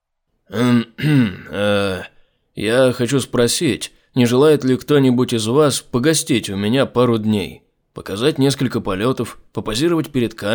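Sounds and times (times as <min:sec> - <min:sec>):
speech: 0:00.5 - 0:01.4, 0:02.6 - 0:10.5
man clearing his throat: 0:00.5 - 0:02.2.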